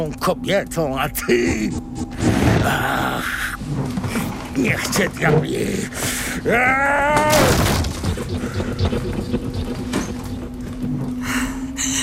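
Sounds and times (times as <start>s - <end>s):
speech: 0.0s - 7.8s
steady low hum: 0.0s - 12.0s
wooden chair being smashed: 7.1s - 8.1s.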